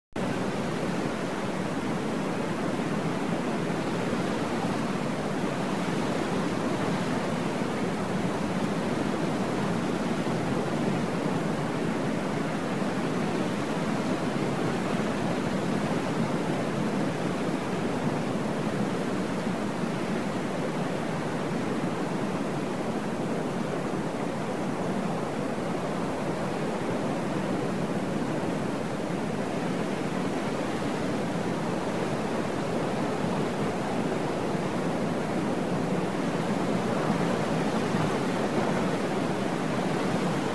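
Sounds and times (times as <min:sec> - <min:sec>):
wind in a jungle: 0:00.2 - 0:40.5.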